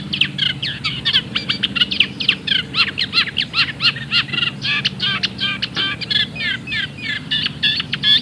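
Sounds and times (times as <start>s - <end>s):
Eurasian reed warbler singing: 0.0s - 8.2s.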